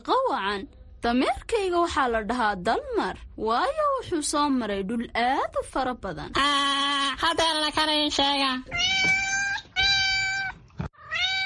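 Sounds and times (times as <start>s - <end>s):
speech: 0.0s - 9.2s
cat meowing: 8.7s - 11.4s.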